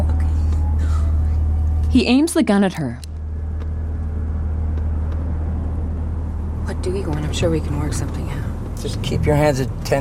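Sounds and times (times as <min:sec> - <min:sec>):
car driving with engine and road rumble: 0:00.0 - 0:09.9
speech: 0:01.9 - 0:03.1, 0:06.8 - 0:09.9.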